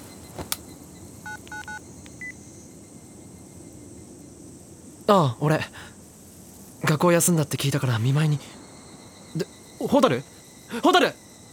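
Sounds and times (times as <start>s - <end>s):
telephone keypad tones as a number is dialed: 1.3s - 2.3s
telephone sharp clicks: 1.3s - 2.3s
speech: 5.1s - 5.9s, 6.9s - 8.6s, 9.3s - 11.2s.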